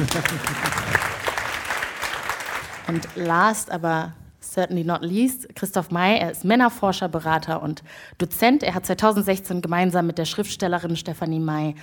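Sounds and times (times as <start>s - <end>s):
speech: 0.0s - 1.1s, 2.9s - 11.8s
audience applause: 0.0s - 3.4s.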